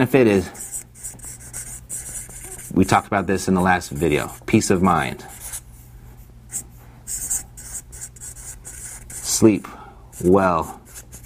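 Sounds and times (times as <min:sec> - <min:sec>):
speech: 0:00.0 - 0:00.6, 0:02.7 - 0:05.4, 0:09.4 - 0:10.8
pen scratching across paper in short strokes: 0:00.6 - 0:03.0, 0:03.6 - 0:05.6, 0:06.5 - 0:09.4, 0:10.2 - 0:11.2.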